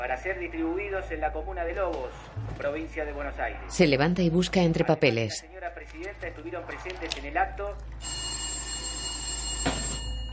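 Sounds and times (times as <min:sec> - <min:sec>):
speech: 0:00.0 - 0:08.4
telephone ringing in a home living room: 0:07.9 - 0:10.3.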